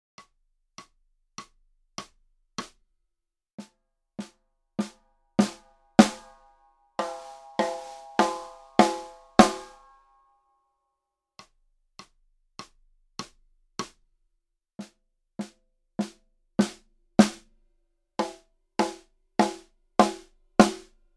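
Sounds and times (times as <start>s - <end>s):
snare drum hit with hickory sticks: 4.8s - 6.4s, 7.0s - 9.8s, 16.6s - 17.4s, 18.2s - 20.9s.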